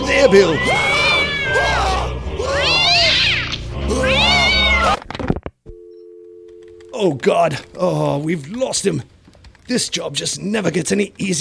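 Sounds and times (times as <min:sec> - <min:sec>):
speech: 0:00.2 - 0:00.9, 0:07.0 - 0:09.1, 0:09.7 - 0:11.3
cat yowling in long wavering meows: 0:00.5 - 0:05.0.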